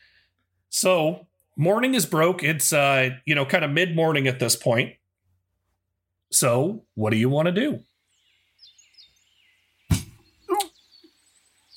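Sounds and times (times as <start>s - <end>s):
speech: 0.8s - 5.0s, 6.3s - 7.9s
faint bird chirps: 7.7s - 11.7s
chair shifting with a loud heavy thud: 9.9s - 10.2s.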